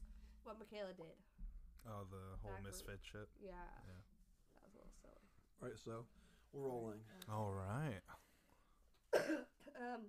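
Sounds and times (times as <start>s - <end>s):
speech: 0.5s - 8.3s, 9.1s - 10.0s
person with allergies coughing: 9.1s - 9.8s.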